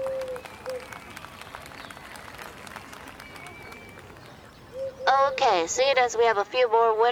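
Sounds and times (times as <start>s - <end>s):
crowd applauding: 0.0s - 4.6s
speech: 5.3s - 7.0s.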